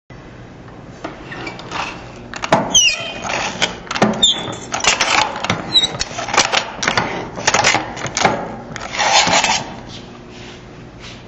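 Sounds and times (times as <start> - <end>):
manual sheet metal shear cutting: 1.3 - 9.8.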